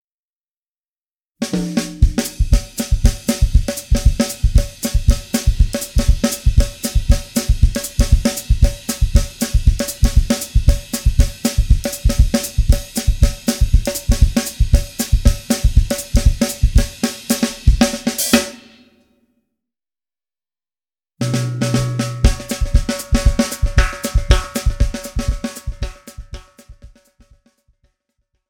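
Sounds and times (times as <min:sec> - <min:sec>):
Latin samba music: 0:01.6 - 0:17.6, 0:21.2 - 0:26.6.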